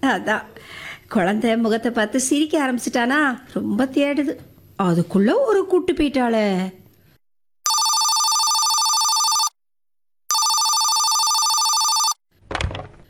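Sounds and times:
speech: 0.0s - 6.8s
telephone ringing: 7.7s - 9.6s, 10.3s - 12.2s.

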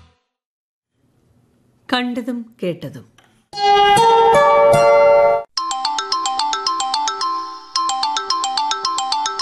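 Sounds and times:
speech: 1.9s - 3.2s
telephone ringtone playing an electronic melody: 4.4s - 9.4s.

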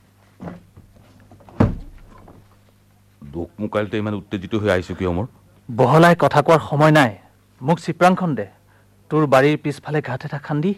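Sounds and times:
door being opened with dull thuds: 1.5s - 2.4s
speech: 3.4s - 10.7s.

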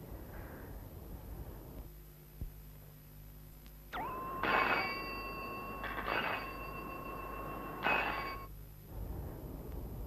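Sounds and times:
low hum: 0.0s - 10.0s
telephone with a handset receiver ringing in electronic bursts: 4.0s - 8.5s.

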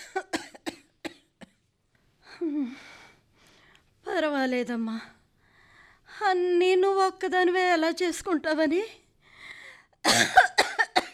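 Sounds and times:
elderly woman in a severe coughing fit: 0.0s - 1.6s, 10.0s - 11.1s
speech: 4.2s - 5.2s, 6.2s - 9.0s.

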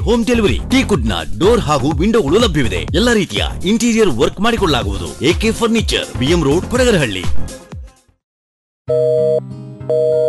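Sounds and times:
speech: 0.0s - 7.6s, 8.9s - 10.2s
telephone busy signal: 8.9s - 10.2s.

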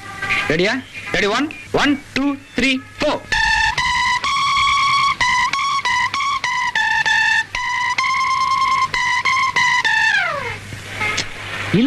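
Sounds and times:
speech: 0.5s - 3.4s
guitar playing a Hindi song melody as a rehearsal: 3.3s - 10.7s.

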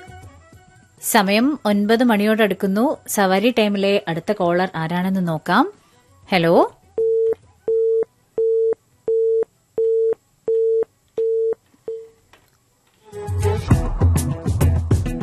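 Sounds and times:
music: 0.0s - 15.2s
speech: 1.0s - 6.8s
telephone busy tone after a dropped call: 7.0s - 12.1s.

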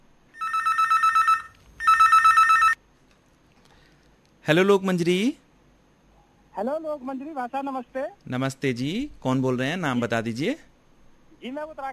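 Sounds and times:
telephone ringing with incoming call: 0.4s - 2.8s
speech: 4.5s - 5.4s, 6.6s - 10.7s, 11.4s - 11.9s.

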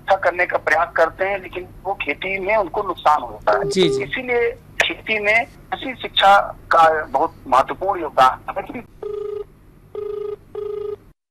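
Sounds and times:
speech: 0.1s - 9.0s
telephone ringing with an electronic tone: 3.5s - 4.1s, 9.0s - 11.0s.

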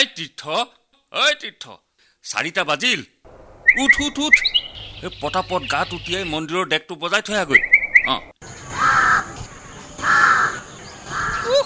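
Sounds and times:
speech: 0.1s - 8.6s
steady hiss: 0.8s - 6.4s
crow cawing in the early morning: 8.7s - 9.4s, 10.0s - 11.5s.

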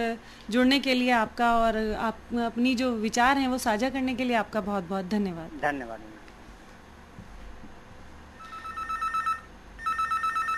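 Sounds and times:
speech: 0.0s - 6.1s
telephone ringing with incoming call: 8.4s - 10.5s.

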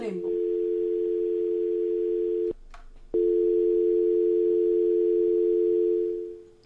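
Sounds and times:
telephone line tone on a call not connecting: 0.2s - 6.5s.

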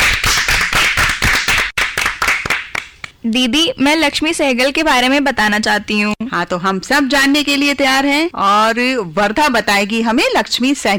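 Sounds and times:
applause from a small group: 0.0s - 3.1s
speech: 3.2s - 10.9s.

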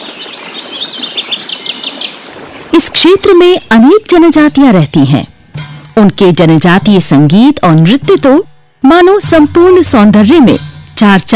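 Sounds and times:
birds chirping and singing beside rivers winding across flat plains: 0.0s - 2.9s
speech: 3.0s - 5.4s, 6.0s - 11.3s.

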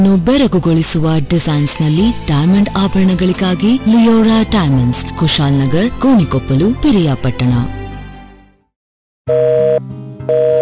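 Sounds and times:
speech: 0.0s - 7.8s, 9.3s - 10.5s
telephone busy tone: 9.3s - 10.6s.

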